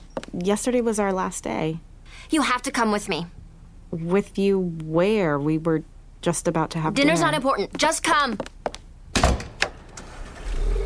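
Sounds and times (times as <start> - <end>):
speech: 0.4 - 8.6
Bentley Continental Flying Spur car engine starting: 9.8 - 10.8.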